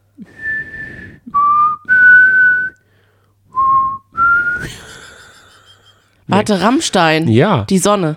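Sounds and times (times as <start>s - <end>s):
person whistling a rock melody: 0.2s - 2.8s, 3.5s - 4.7s
speech: 6.4s - 8.1s.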